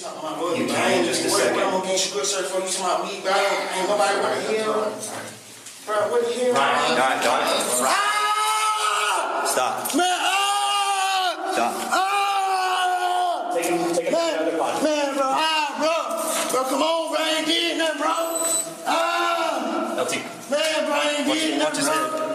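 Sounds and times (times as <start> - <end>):
speech: 0.2 - 8.1, 9.4 - 10.2, 11.6 - 12.0, 13.6 - 22.3
man screaming and wailing while restrained by deputies in a courtroom: 7.9 - 13.6.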